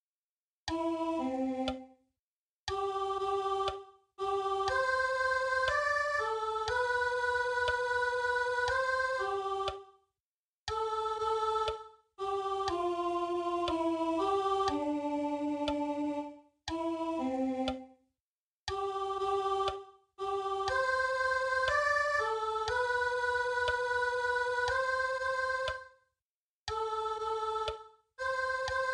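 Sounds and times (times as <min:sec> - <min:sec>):
soprano singing: 0:00.7 - 0:01.9, 0:02.7 - 0:09.9, 0:10.7 - 0:17.9, 0:18.7 - 0:25.8, 0:26.7 - 0:28.9.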